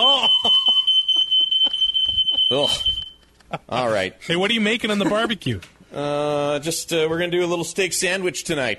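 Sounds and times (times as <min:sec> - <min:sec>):
speech: 0:00.0 - 0:00.6, 0:02.5 - 0:08.7
laughter: 0:00.0 - 0:02.5, 0:04.9 - 0:05.5
smoke alarm shrill high-pitched tone: 0:00.0 - 0:03.2.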